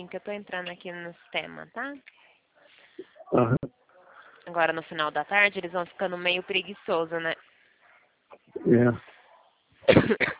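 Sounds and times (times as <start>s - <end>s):
speech: 0.0s - 2.3s, 3.0s - 3.8s, 4.5s - 7.5s, 8.4s - 9.1s, 9.8s - 10.3s
person groaning: 8.6s - 9.0s
harsh coughs: 9.8s - 10.3s.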